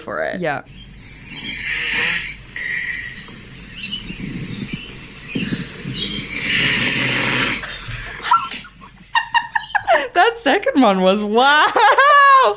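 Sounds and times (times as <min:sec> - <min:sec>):
speech: 0:00.0 - 0:01.4, 0:10.2 - 0:12.5
loud guttural human snoring: 0:01.0 - 0:08.2
laughter: 0:08.0 - 0:10.3, 0:11.5 - 0:12.5.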